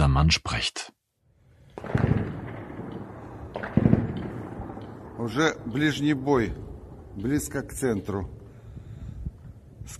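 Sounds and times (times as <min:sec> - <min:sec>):
speech: 0:00.2 - 0:01.0, 0:05.2 - 0:08.4
gunfire of battle: 0:01.7 - 0:07.5
explosions of battle: 0:01.7 - 0:09.7
heavy booming blasts of battle: 0:01.8 - 0:09.2.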